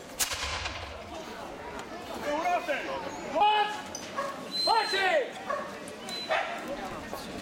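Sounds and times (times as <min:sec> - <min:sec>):
gunshot fired on command during a battle reenactment: 0:00.2 - 0:01.5
faint voices: 0:00.7 - 0:07.4.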